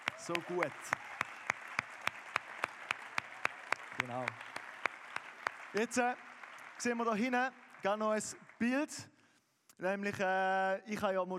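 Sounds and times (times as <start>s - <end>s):
audience clapping: 0.0s - 9.1s
speech: 0.3s - 1.0s, 4.0s - 4.5s, 5.7s - 9.1s, 9.8s - 11.3s.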